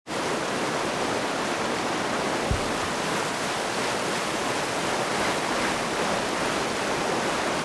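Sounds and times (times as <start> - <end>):
water in storage: 0.1 - 7.6.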